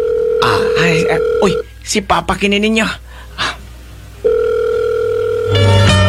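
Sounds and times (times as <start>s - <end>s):
cellphone ringtone: 0.0s - 1.6s, 4.2s - 6.0s
speech: 0.4s - 3.0s.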